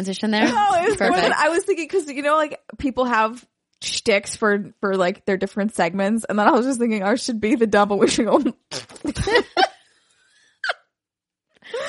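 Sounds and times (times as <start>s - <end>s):
speech: 0.0s - 9.7s
laughter: 0.4s - 1.6s, 8.9s - 9.8s
mouth imitating a crude bad fart sound: 8.6s - 9.3s.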